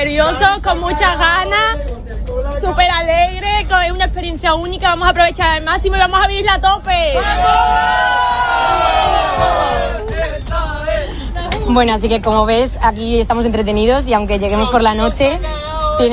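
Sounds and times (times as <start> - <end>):
speech: 0.0 - 10.7, 11.7 - 16.1
crowd of excited young pilgrims shouting and cheering: 6.8 - 11.7.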